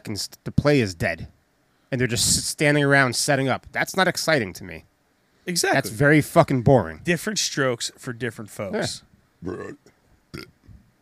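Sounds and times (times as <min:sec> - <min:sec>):
speech: 0:00.0 - 0:04.9, 0:05.5 - 0:10.5
brief vocal grunts: 0:09.4 - 0:10.5
loud burp against the microphone: 0:09.4 - 0:10.6.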